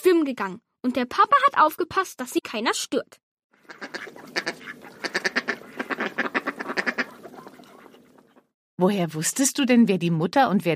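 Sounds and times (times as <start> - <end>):
speech: 0.1 - 5.2, 8.8 - 10.7
mallard ducks quacking: 3.6 - 8.5.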